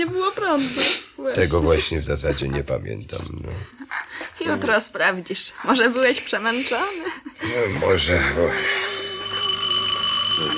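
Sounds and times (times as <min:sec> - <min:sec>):
speech: 0:00.0 - 0:08.9
doorbell ringing with electric tone: 0:07.8 - 0:10.5.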